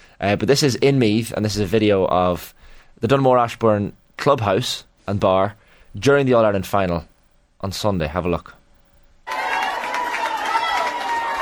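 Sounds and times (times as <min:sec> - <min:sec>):
speech: 0:00.2 - 0:08.6
crowd of sports fans cheering and clapping in a clubhouse bar in Meath: 0:09.3 - 0:11.4.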